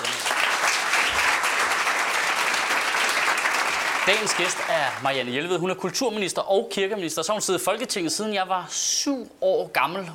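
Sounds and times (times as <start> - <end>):
audience applause: 0.0 - 5.2
speech: 4.0 - 10.1.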